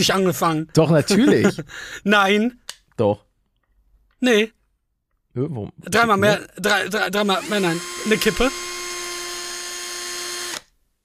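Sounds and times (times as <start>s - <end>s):
speech: 0.0s - 3.3s, 4.2s - 4.6s, 5.4s - 8.6s
laughter: 0.8s - 1.9s
high-pitched drill whirring: 7.1s - 10.7s.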